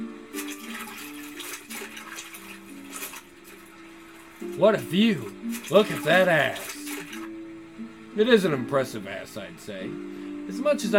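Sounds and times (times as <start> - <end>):
clothes being washed in a river: 0.3 - 7.3
speech: 4.6 - 6.7, 8.2 - 10.9.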